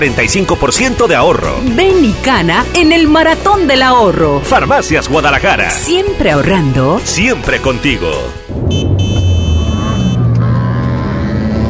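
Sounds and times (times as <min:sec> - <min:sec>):
speech: 0:00.0 - 0:08.4
car horn blaring: 0:07.9 - 0:10.5
traffic noise: 0:08.5 - 0:11.0
car overtaking on the right: 0:08.5 - 0:11.6.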